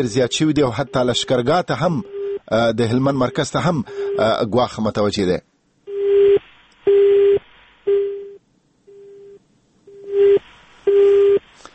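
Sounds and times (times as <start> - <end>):
telephone busy tone after a dropped call: 0.0 - 2.4, 3.0 - 4.4, 5.9 - 11.4
speech: 0.0 - 5.5.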